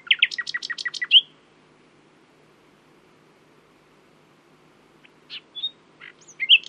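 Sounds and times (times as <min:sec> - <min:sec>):
common nightingale song phrase: 0:00.0 - 0:01.4, 0:05.0 - 0:06.6.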